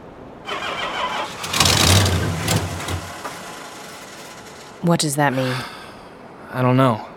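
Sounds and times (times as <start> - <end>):
engine cranking after ignition is turned: 0.5 - 4.9
speech: 4.8 - 5.8, 6.5 - 7.1.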